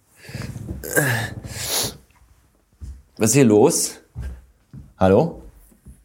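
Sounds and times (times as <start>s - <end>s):
speech: 1.0s - 1.7s, 3.2s - 4.0s, 5.0s - 5.4s
small black cat hissing: 1.0s - 2.0s.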